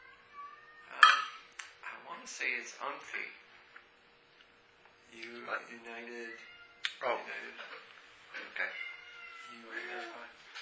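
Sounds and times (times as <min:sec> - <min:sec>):
cat meowing: 0:00.0 - 0:01.4, 0:06.2 - 0:07.0, 0:08.4 - 0:10.3
faint hum: 0:00.0 - 0:10.6
speech: 0:02.3 - 0:03.5, 0:05.1 - 0:08.8, 0:09.5 - 0:10.6.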